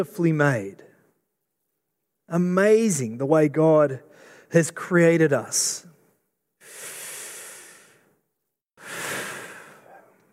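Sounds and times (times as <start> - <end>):
speech: 0.0 - 0.9, 2.3 - 5.9
deep breath in and out: 4.1 - 4.5, 6.6 - 10.2.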